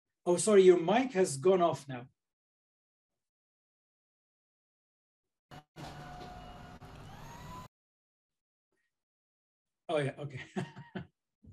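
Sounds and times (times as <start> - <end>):
speech: 0.2 - 2.2, 9.9 - 11.1
vacuum cleaner running in another room: 5.5 - 7.7
laughter: 10.3 - 11.1.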